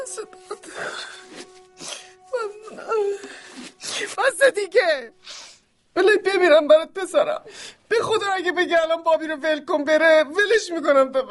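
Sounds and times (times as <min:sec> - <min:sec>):
speech: 0:00.0 - 0:01.5, 0:04.5 - 0:05.2, 0:06.0 - 0:11.2
person crying and wailing: 0:00.0 - 0:04.5.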